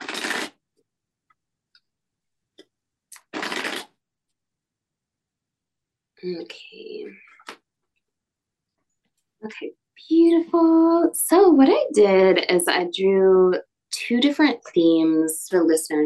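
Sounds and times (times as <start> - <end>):
tarot card deck being riffle shuffled: 0.0 - 0.6, 3.2 - 3.9
speech: 6.2 - 7.5, 9.4 - 16.0.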